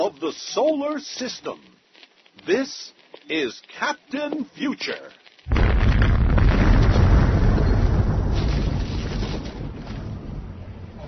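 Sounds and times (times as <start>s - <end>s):
speech: 0.1s - 1.8s, 2.4s - 5.6s
thermonuclear blast roar and rumble: 5.5s - 11.0s.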